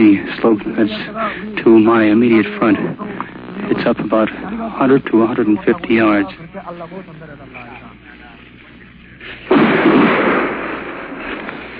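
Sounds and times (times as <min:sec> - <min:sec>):
speech: 0:00.0 - 0:07.7
artillery shell exploding on a battlefield: 0:09.5 - 0:11.7.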